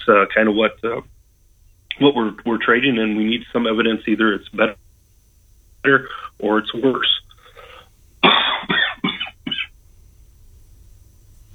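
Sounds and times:
speech: 0:00.0 - 0:01.2, 0:02.0 - 0:04.8, 0:05.8 - 0:07.2
person coughing harshly: 0:07.5 - 0:09.7.

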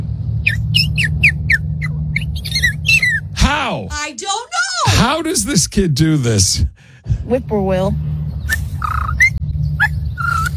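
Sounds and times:
human voice imitating a purple martin call: 0:00.5 - 0:03.3, 0:08.5 - 0:09.4, 0:10.2 - 0:10.5
speech: 0:03.7 - 0:08.2.

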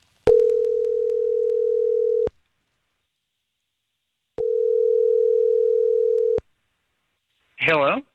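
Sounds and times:
outgoing phone call electronic ringback tone: 0:00.3 - 0:02.3, 0:04.4 - 0:06.4.

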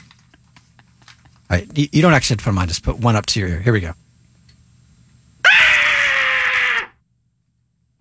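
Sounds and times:
speech: 0:01.5 - 0:04.0
woman screaming in terror: 0:05.5 - 0:06.9.

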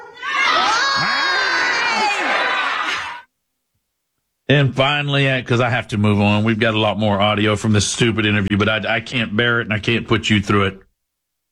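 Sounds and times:
loud crowd shouting and cheering in response to a speaker: 0:00.0 - 0:03.3
speech: 0:04.5 - 0:10.8.

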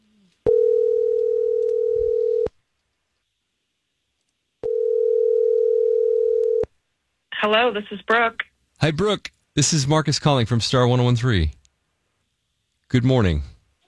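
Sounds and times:
phone line ringback tone on an outgoing call: 0:00.5 - 0:02.5, 0:04.6 - 0:06.6
speech: 0:07.4 - 0:11.6, 0:12.9 - 0:13.5.

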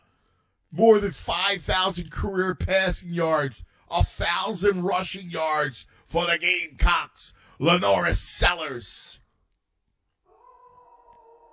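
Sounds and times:
speech: 0:00.7 - 0:09.2
dog howling: 0:10.3 - 0:11.5.

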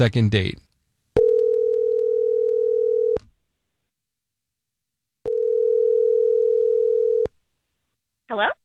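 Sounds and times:
electronic phone line ringing tone as a call is placed: 0:01.2 - 0:03.2, 0:05.3 - 0:07.3.

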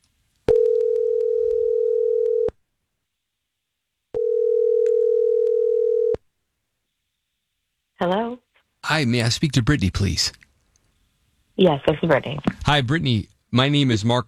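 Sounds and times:
telephone ringback tone on an outgoing call: 0:00.5 - 0:02.5, 0:04.2 - 0:06.2
speech: 0:08.0 - 0:10.4, 0:11.6 - 0:14.2.

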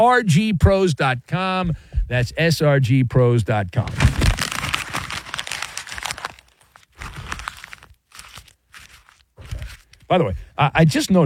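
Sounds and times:
speech: 0:00.0 - 0:04.2, 0:10.1 - 0:11.2
paper crinkling and being folded: 0:03.8 - 0:10.1.

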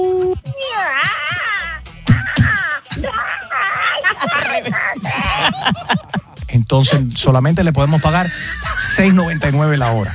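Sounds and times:
woman imitating a witch's cackle at an audition: 0:01.1 - 0:06.4
speech: 0:06.8 - 0:10.1.

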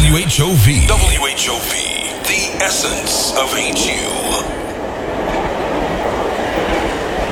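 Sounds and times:
speech: 0:00.2 - 0:05.6
train rolling on rails with clickety-clack: 0:03.6 - 0:07.3.

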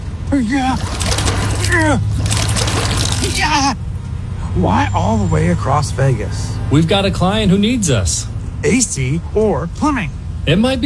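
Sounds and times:
speech: 0:00.3 - 0:01.1, 0:01.7 - 0:02.1, 0:03.2 - 0:03.8, 0:04.6 - 0:10.8
water sloshing and splashing inside a small fishbowl in a moving car: 0:00.5 - 0:03.6.

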